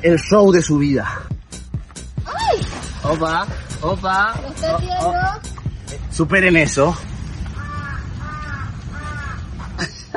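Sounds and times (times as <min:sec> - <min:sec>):
speech: 0:00.0 - 0:01.3, 0:03.0 - 0:05.5, 0:06.2 - 0:07.1
crow cawing harshly: 0:07.5 - 0:09.7.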